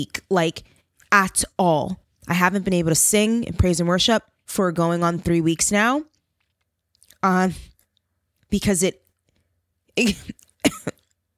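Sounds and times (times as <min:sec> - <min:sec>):
speech: 0:00.0 - 0:06.1, 0:07.2 - 0:07.7, 0:08.5 - 0:09.0, 0:10.0 - 0:10.8
harsh throaty coughs: 0:10.1 - 0:11.1.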